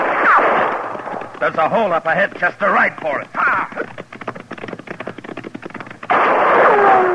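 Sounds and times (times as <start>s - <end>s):
gunshots fired at riders: 0.0s - 1.8s, 6.1s - 7.1s
speech: 1.4s - 4.0s.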